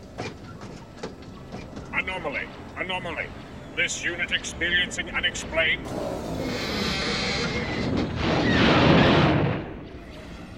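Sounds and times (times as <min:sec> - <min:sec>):
speech: 0:02.1 - 0:07.8
battle droids exploding with a dense crackling broadband roar: 0:05.9 - 0:10.1.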